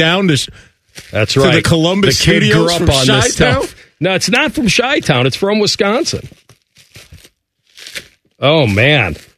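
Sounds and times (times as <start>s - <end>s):
speech: 0.0s - 6.4s, 8.4s - 9.3s
paper bag holding an apple pie being torn open: 6.3s - 9.3s.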